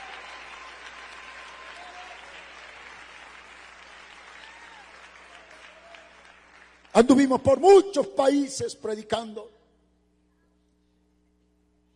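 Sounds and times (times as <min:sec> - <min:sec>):
audience applauding: 0:00.0 - 0:07.2
speech: 0:07.0 - 0:09.6.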